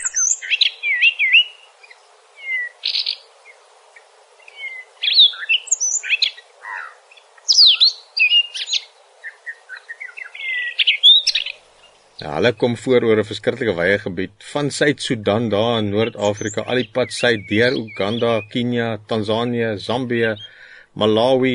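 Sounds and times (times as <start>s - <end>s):
Cape robin-chat singing whistled and warbling phrases: 0.0s - 3.2s, 4.4s - 12.3s, 16.0s - 18.7s, 20.2s - 20.6s
speech: 12.2s - 21.5s.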